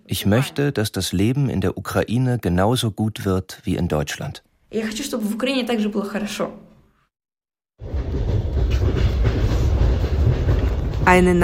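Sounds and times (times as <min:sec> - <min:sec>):
speech: 0:00.1 - 0:06.6, 0:11.1 - 0:11.4
train running on rails travelling to Kharkiv, Ukraine: 0:07.8 - 0:11.4.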